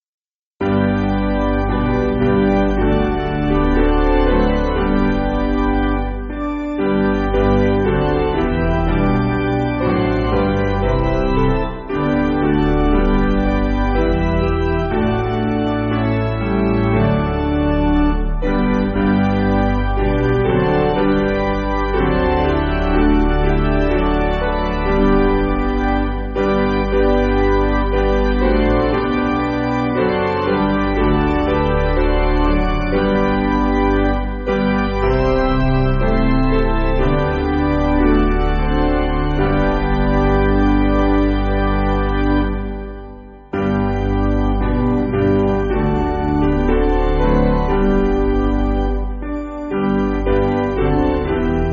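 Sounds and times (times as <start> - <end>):
piano piece: 0.6 - 51.7.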